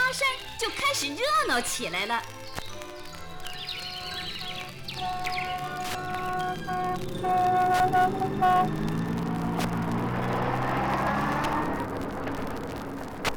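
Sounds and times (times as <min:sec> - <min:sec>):
speech: 0:00.1 - 0:02.4, 0:05.0 - 0:05.6, 0:06.6 - 0:08.9
faint chirps: 0:02.2 - 0:10.0
high tonal notes: 0:02.2 - 0:13.3
convoy of cars on a winding mountain road: 0:02.8 - 0:13.3.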